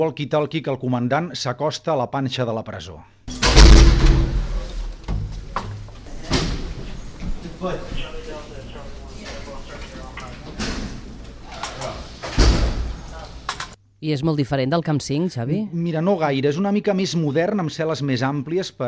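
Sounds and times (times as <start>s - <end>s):
speech: 0.0s - 3.2s, 7.6s - 8.2s, 14.0s - 18.8s
heavy metal prison doors slid open and clanged shut: 3.3s - 7.2s, 9.3s - 13.8s.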